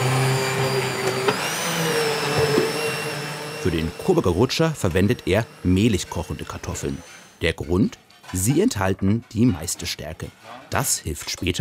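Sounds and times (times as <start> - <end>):
oversized immersion blender mixing boiled potatoes: 0.0 - 7.4
speech: 3.6 - 11.6.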